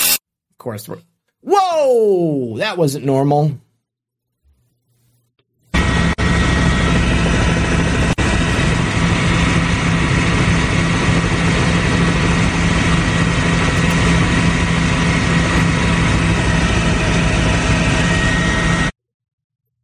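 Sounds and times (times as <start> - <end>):
speech: 0.6 - 3.6
Boeing jet aircraft engines roaring while arriving at airport: 5.8 - 18.8.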